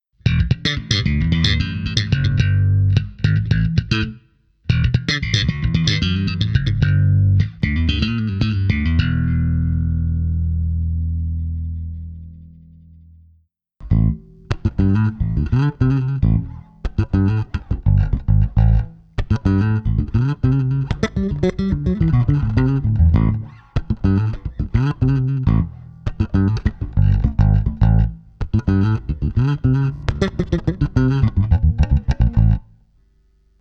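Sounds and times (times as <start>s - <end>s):
1963 Jazz Bass bass guitar: 0.2s - 32.9s.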